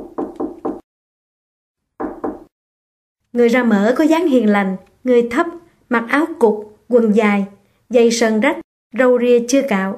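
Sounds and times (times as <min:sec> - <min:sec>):
knocking on an apartment door: 0:00.0 - 0:00.8, 0:02.0 - 0:02.5
speech: 0:03.3 - 0:09.9.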